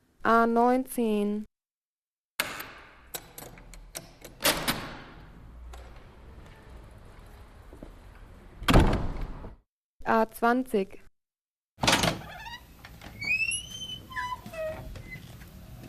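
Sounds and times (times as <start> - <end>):
speech: 0.2 - 1.5, 10.1 - 11.0
doors opening and closing: 2.4 - 9.6, 11.8 - 15.8
door slamming: 4.4 - 6.0, 8.6 - 9.6, 11.8 - 12.4.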